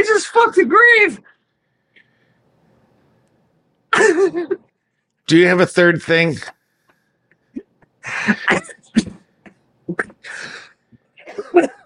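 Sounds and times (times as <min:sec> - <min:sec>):
speech: 0:00.0 - 0:01.4, 0:04.0 - 0:04.7, 0:05.3 - 0:06.6, 0:08.0 - 0:09.1, 0:09.9 - 0:10.7, 0:11.3 - 0:11.8
drunk man clearing his throat: 0:03.9 - 0:04.6, 0:08.2 - 0:10.3, 0:11.2 - 0:11.8
drunk man coughing: 0:03.9 - 0:04.7, 0:08.0 - 0:11.8.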